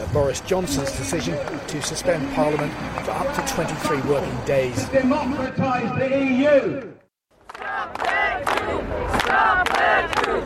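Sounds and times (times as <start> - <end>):
speech: 0.1 - 7.0
crowd of demonstrators chanting protest slogans in unison: 7.5 - 10.4.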